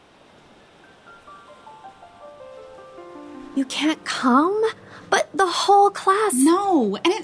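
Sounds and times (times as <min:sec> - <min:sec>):
ocean waves: 0:00.0 - 0:07.0
faint high gliding tones: 0:00.5 - 0:07.2
speech: 0:03.6 - 0:07.2.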